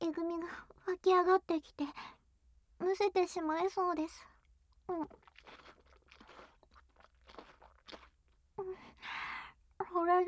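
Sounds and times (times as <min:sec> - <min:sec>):
speech: 0:00.5 - 0:02.2, 0:02.8 - 0:04.3, 0:04.9 - 0:05.6, 0:09.9 - 0:10.2
wet mouth sounds: 0:04.9 - 0:08.8
crunchy chewing of a cheese-like food: 0:05.0 - 0:08.4.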